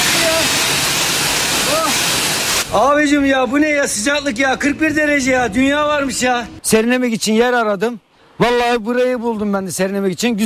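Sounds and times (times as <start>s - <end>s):
pressure-washer water spraying at a car wash: 0.0s - 2.7s
speech: 2.7s - 10.4s.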